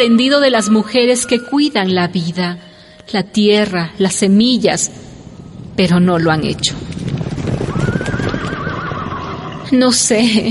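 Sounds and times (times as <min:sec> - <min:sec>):
speech: 0:00.0 - 0:05.1, 0:05.8 - 0:07.0, 0:09.7 - 0:10.5
horse whinnying: 0:07.6 - 0:09.7.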